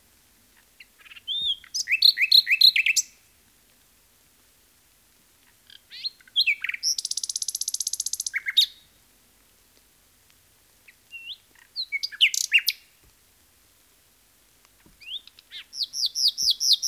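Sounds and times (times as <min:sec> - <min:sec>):
Common nightingale singing varied phrases: 0:00.6 - 0:03.2, 0:05.7 - 0:08.9, 0:10.9 - 0:12.9, 0:15.0 - 0:16.8.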